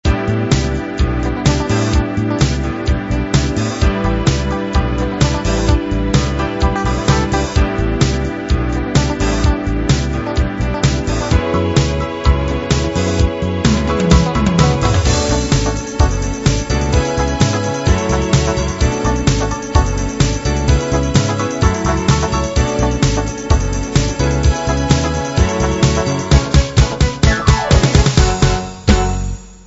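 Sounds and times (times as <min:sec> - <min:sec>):
1970s disco music: 0:00.0 - 0:29.3.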